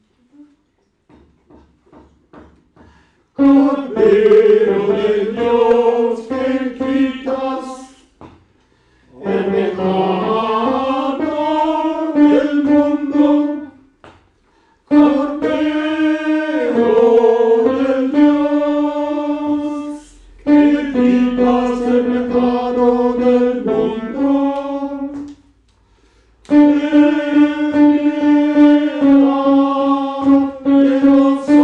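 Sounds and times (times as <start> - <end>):
tenor singing: 3.4 - 8.2, 9.1 - 13.9, 14.9 - 25.3, 26.5 - 31.6.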